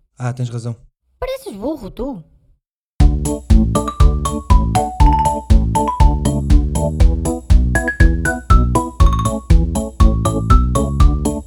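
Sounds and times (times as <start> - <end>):
speech: 0.2 - 2.3, 3.2 - 3.6
bright upbeat show intro theme jingle: 3.0 - 11.4.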